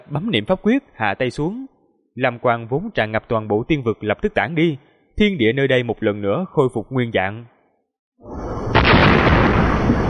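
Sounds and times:
speech: 0.1 - 7.5
huge water column crashing into the sea with thunderous explosion: 8.7 - 10.0.

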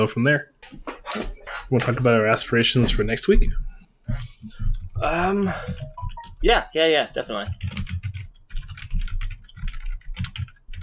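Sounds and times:
speech: 0.0 - 7.7
typing on a computer keyboard: 4.2 - 6.4, 7.2 - 10.8.

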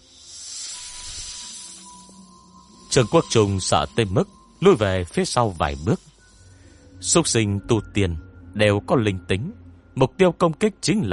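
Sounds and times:
snake hissing: 0.0 - 7.0
speech: 2.9 - 6.1, 7.0 - 11.1.

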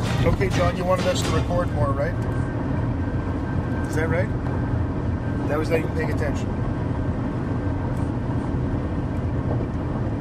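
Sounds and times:
tires and engine roar inside a vehicle hauling a trailer on the 407 toll highway: 0.0 - 10.1
speech: 0.2 - 2.7, 3.9 - 4.7, 5.5 - 6.6.

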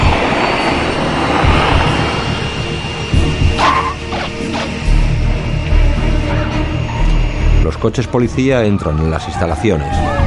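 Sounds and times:
Hawker business jet engines roaring while landing on a runway: 0.0 - 8.1
speech: 7.8 - 10.2.

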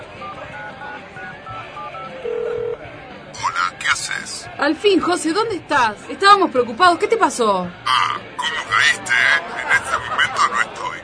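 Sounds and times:
low murmur of voices: 0.0 - 11.0
mobile phone key tone from dialing a number: 0.2 - 2.8
speech: 4.6 - 7.8
laughter: 7.9 - 11.0.

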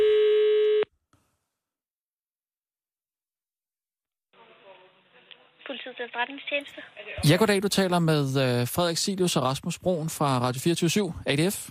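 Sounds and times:
telephone tone as a call is placed: 0.0 - 0.9
speech: 5.7 - 11.7.

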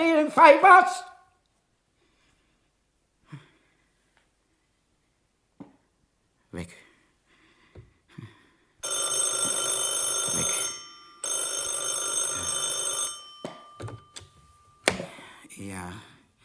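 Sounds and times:
speech: 0.0 - 1.1, 6.6 - 6.8
metallic telephone bell ringing: 8.8 - 15.4.

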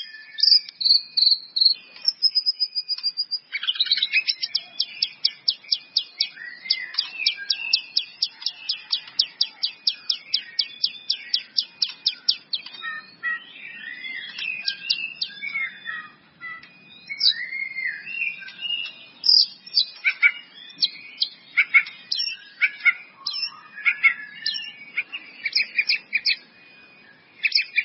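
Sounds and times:
White-rumped Shama song: 0.0 - 27.8.

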